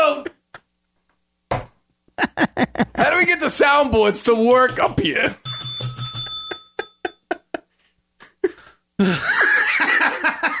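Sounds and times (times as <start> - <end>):
loud noisy laughter: 2.2 - 3.0, 9.0 - 10.5
speech: 3.5 - 5.6, 9.0 - 9.4
small bell ringing rapidly: 5.4 - 7.2.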